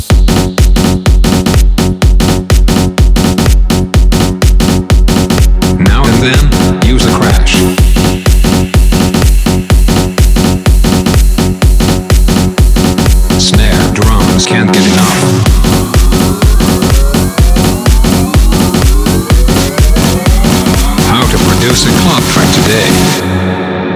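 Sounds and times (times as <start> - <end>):
heavy wobble bass: 0.0 - 23.7
loud dense dubstep track with a pounding steady beat: 0.0 - 23.8.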